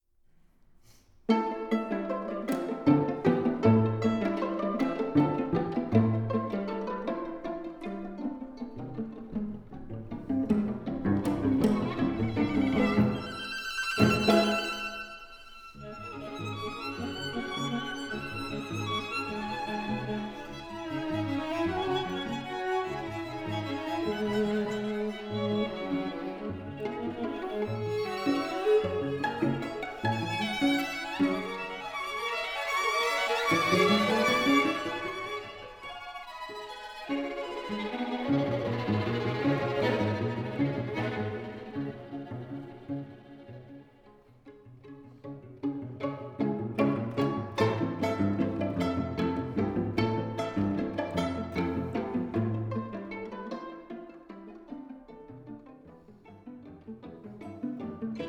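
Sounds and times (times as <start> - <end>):
string quartet playing: 1.3 - 58.2.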